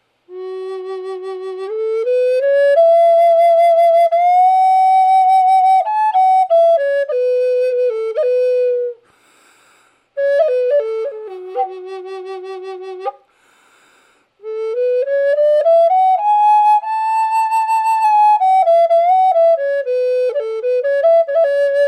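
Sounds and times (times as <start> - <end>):
ebony flute playing dry F-sharp note: 0.3 - 9.1, 10.2 - 13.6, 14.4 - 21.8.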